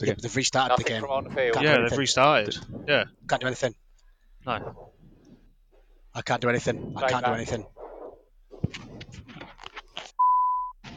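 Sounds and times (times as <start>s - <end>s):
speech: 0.0s - 3.8s, 4.4s - 4.9s, 6.2s - 7.8s, 8.6s - 8.9s
crunchy rustling noises: 0.0s - 10.2s
loud steady electronic beep: 10.2s - 10.8s.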